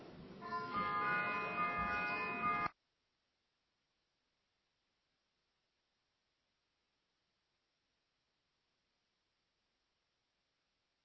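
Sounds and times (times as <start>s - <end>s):
parliamentary voting electric bell ringing: 0.5s - 2.7s.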